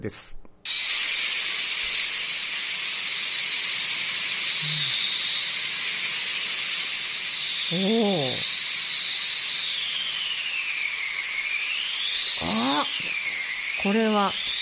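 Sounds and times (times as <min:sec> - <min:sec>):
speech: 0:00.0 - 0:00.4, 0:04.6 - 0:05.0, 0:07.7 - 0:08.5, 0:13.8 - 0:14.5
handmade wind machine whooshing: 0:00.7 - 0:14.6
person exclaiming: 0:07.7 - 0:08.4, 0:12.4 - 0:13.0.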